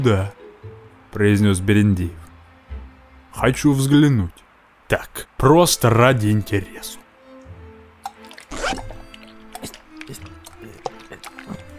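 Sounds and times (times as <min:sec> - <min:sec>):
speech: 0:00.0 - 0:00.4, 0:01.2 - 0:02.2, 0:03.4 - 0:07.0
hot-water bottle gurgling: 0:08.0 - 0:11.7
trouser zipper opening: 0:08.4 - 0:10.2.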